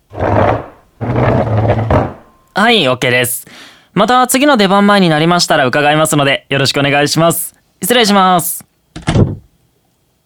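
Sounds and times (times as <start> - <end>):
chair pushed forward across the floor backstage at a stage show: 0.0 - 2.4
speech: 2.6 - 9.3.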